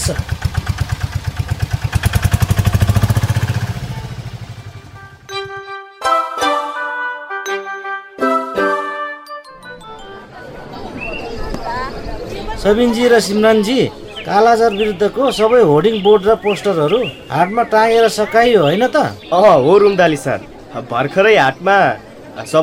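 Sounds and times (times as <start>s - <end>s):
three-wheeler tempo engine starting and chugging: 0.0s - 4.8s
speech: 0.1s - 0.3s, 12.6s - 22.6s
ringing musical tones: 4.8s - 11.0s.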